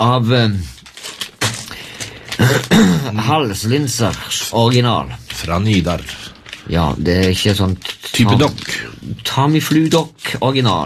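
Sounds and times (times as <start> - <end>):
speech: 0.0 - 0.8, 2.5 - 10.8
person coughing: 2.3 - 3.3.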